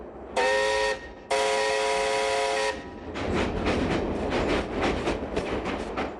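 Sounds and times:
train horn blasts: 0.4 - 2.9
train rumbling along the rails with wheels clacking over track joints: 2.5 - 6.1.

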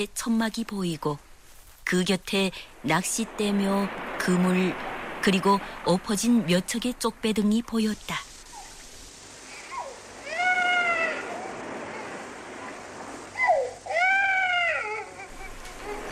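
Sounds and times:
speech: 0.0 - 1.3, 1.9 - 8.3
infant crying by a tent near fishing nets: 9.6 - 16.0.

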